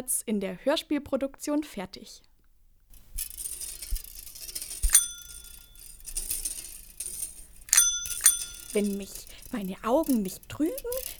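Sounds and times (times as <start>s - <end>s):
speech: 0.0s - 2.3s, 8.7s - 11.1s
bicycle bell ringing: 3.0s - 11.1s.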